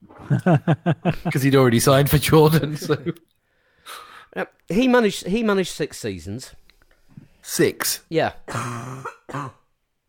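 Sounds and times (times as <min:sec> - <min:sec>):
laughter: 0:00.1 - 0:03.2
speech: 0:00.3 - 0:03.3, 0:03.9 - 0:06.6, 0:07.4 - 0:09.6
rough chesty cough: 0:08.5 - 0:09.7.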